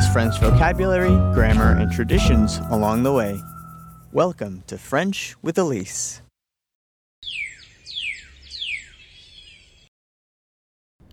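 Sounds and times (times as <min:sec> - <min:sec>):
speech: 0:00.2 - 0:03.5, 0:04.1 - 0:06.2, 0:07.2 - 0:07.5
bird calling loudly with sharp descending whistles: 0:01.8 - 0:04.2, 0:07.2 - 0:09.7.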